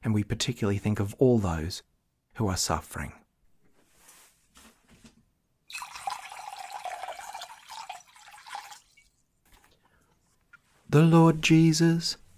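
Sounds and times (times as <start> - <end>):
speech: 0.0 - 3.2, 10.9 - 12.2
water running and splashing during a ritual washing of feet: 5.7 - 9.6.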